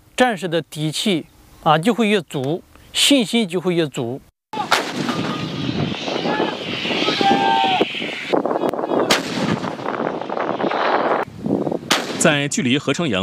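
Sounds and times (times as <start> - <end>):
speech: 0.2 - 4.3, 12.2 - 13.2
heavy artillery booms during a live-fire shooting exercise: 4.6 - 7.0, 9.0 - 10.6, 11.9 - 12.3
wind noise: 4.6 - 12.5
brief whistling tones: 5.1 - 8.7.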